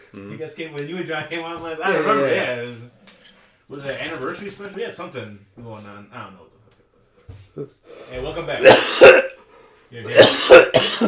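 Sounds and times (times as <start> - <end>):
speech: 0.1 - 3.0, 3.7 - 6.6, 7.6 - 9.3, 9.9 - 11.0
person coughing: 8.6 - 9.4, 10.1 - 11.0.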